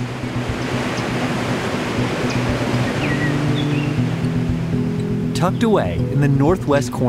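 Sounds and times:
Zambezi River waterfall roaring at Victoria Falls on the Zimbabwe-Zambia border: 0.0s - 5.5s
faint bird chirps: 2.2s - 4.2s
speech: 5.4s - 7.0s.

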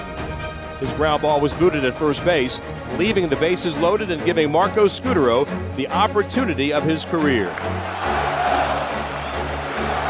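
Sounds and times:
speech: 0.8s - 8.3s
baseball stadium crowd roaring and chanting a player's name: 7.8s - 10.0s.

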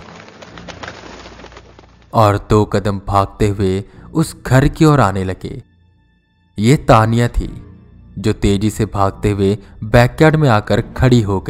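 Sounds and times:
flock of birds flapping wings taking flight from the forest: 0.0s - 2.3s
speech: 2.1s - 5.7s, 6.6s - 7.6s, 8.2s - 11.4s.

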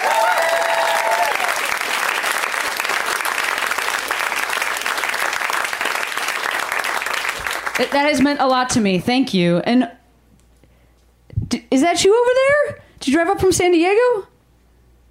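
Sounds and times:
live crowd audience applause: 0.0s - 8.3s
speech: 7.8s - 10.0s, 11.7s - 14.3s.

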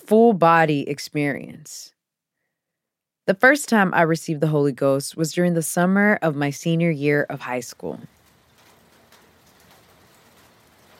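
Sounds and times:
speech: 0.1s - 2.0s, 3.3s - 8.2s
steady rain falling: 7.8s - 10.9s.

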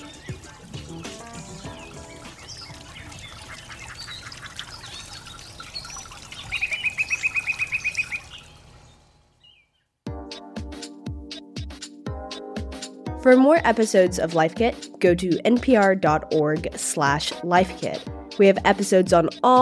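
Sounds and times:
rhythmic music with steady beats: 0.0s - 4.3s, 10.1s - 19.6s
recorded birdsong with high chirps: 0.0s - 9.9s
speech: 13.2s - 19.6s.

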